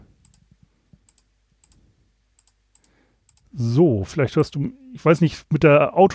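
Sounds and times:
faint hum: 0.0 - 6.1
computer mouse clicking: 0.2 - 0.4, 1.0 - 1.8, 2.4 - 3.5
speech: 3.6 - 6.1.

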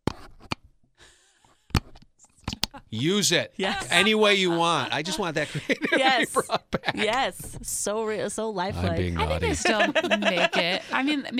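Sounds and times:
plastic box being opened with clicks and snaps: 1.8 - 2.8
laughter: 2.8 - 7.6, 8.7 - 11.3
speech: 2.9 - 11.3.

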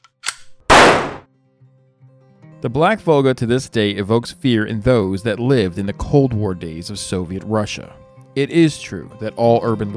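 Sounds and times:
short metallic click: 0.0 - 1.2
loud gunshot: 0.7 - 1.3
speech: 2.6 - 9.9.

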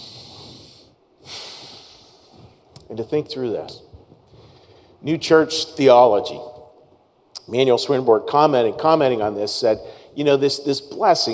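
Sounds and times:
big deep breaths taken during a church talk: 0.0 - 2.7, 4.2 - 5.0, 9.8 - 10.2
speech: 2.9 - 3.9, 5.0 - 6.5, 7.5 - 11.3.

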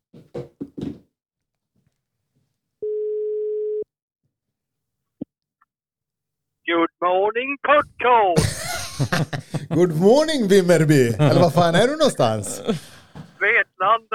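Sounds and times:
telephone ringback tone: 2.8 - 3.8
speech: 7.1 - 12.9, 13.8 - 14.1
laughter: 8.4 - 13.4.

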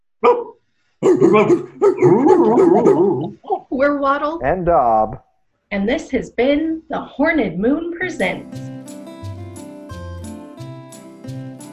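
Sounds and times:
dog barking: 0.2 - 3.4
speech: 1.2 - 8.7.

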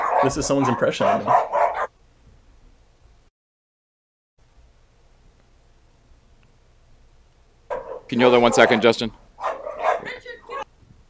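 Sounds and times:
small dog yappy barking: 0.0 - 1.9, 7.7 - 10.6
speech: 0.2 - 1.6, 8.1 - 9.6.

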